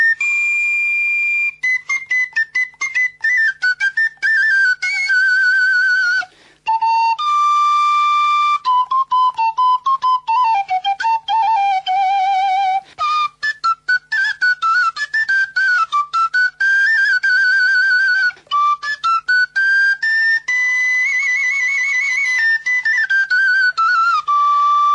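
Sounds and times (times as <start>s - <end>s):
person whistling a lilting folk melody: 0.0s - 24.9s.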